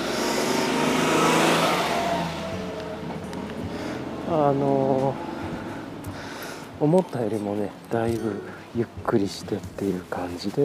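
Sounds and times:
car engine and tires passing on a road: 0:00.0 - 0:07.6
speech: 0:04.3 - 0:05.3, 0:06.8 - 0:10.6.

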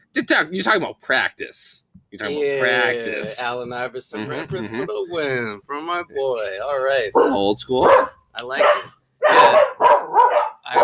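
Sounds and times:
speech: 0:00.2 - 0:09.7
dog barking: 0:07.1 - 0:10.8.

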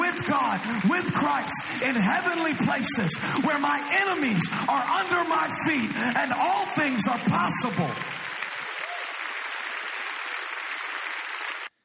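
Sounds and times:
large indoor church crowd applauding: 0:00.0 - 0:11.8
speech: 0:00.3 - 0:08.2.

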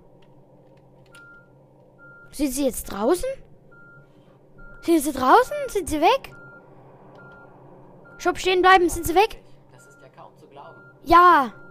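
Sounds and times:
bus engine rumbling while maneuvering: 0:00.0 - 0:11.6
speech: 0:02.4 - 0:03.5, 0:04.8 - 0:06.4, 0:08.2 - 0:09.4, 0:10.7 - 0:11.6
sustained electronic reversing beeps of a bus: 0:03.7 - 0:05.0, 0:06.3 - 0:11.6.

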